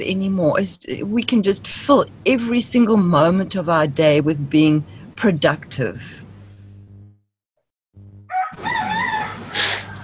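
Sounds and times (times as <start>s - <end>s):
speech: 0.0s - 6.2s
low humming drone: 0.4s - 7.2s
rooster crowing: 8.3s - 10.0s.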